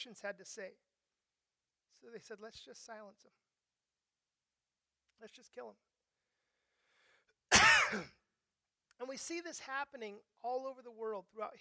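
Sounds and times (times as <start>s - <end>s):
speech: 0.0s - 0.9s, 2.0s - 3.5s, 5.2s - 5.9s, 7.9s - 8.2s, 9.0s - 11.5s
single harsh cough with rough throaty rasp: 7.5s - 8.2s.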